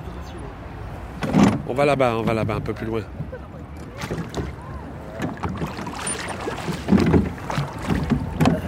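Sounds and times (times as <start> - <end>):
light wind: 0.0 - 8.6
speech: 1.7 - 3.2
oars rowing a rowboat, splashing and churning water: 3.6 - 8.6.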